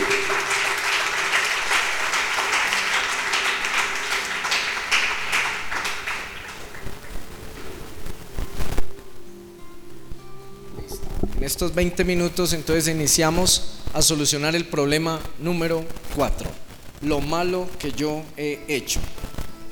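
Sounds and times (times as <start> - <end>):
audience applause at a religious seminar: 0.0 - 8.4
speech: 11.6 - 19.2.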